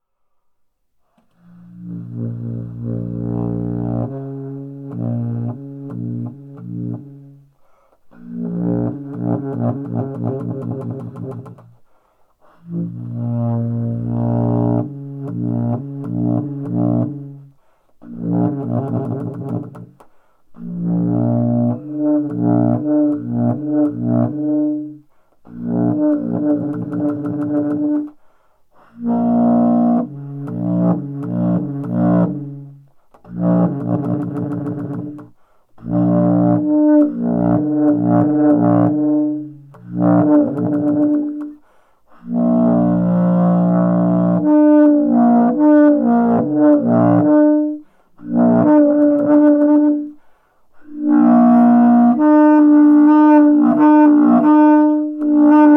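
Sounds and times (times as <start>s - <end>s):
bass saxophone playing notes in C: 1.3s - 11.8s, 12.5s - 28.2s, 28.8s - 50.2s, 50.8s - 55.7s.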